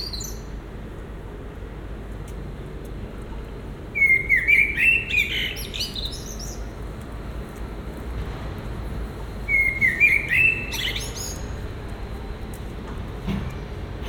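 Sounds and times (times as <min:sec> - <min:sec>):
common blackbird singing: 0:00.0 - 0:00.5, 0:04.0 - 0:06.7, 0:09.5 - 0:11.6.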